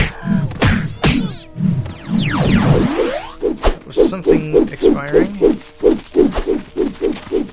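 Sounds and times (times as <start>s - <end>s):
video game punches landing as sharp thwacks: 0.0s - 1.4s
swooping electronic tones: 0.0s - 7.5s
speech: 4.2s - 5.4s.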